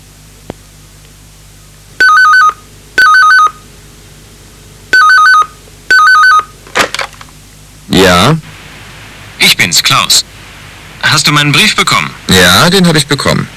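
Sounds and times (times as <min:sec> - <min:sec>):
telephone ringing in double-ring pairs: 0:02.0 - 0:03.6, 0:04.9 - 0:06.5
speech: 0:08.0 - 0:08.5, 0:09.4 - 0:10.3, 0:11.1 - 0:13.5.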